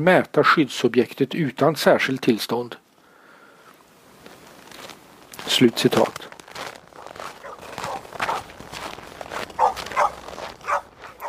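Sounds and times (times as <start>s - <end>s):
speech: 0.0s - 2.8s, 5.5s - 6.4s
police dogs barking and yapping: 7.0s - 8.7s, 9.3s - 11.2s
dog yelping: 7.3s - 8.5s, 9.5s - 11.2s.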